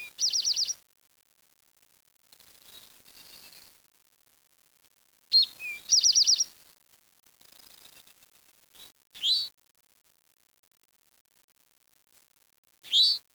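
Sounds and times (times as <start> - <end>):
bird calls with faint short chirps and louder notes: 0.0 - 0.8, 5.4 - 6.5, 12.9 - 13.2.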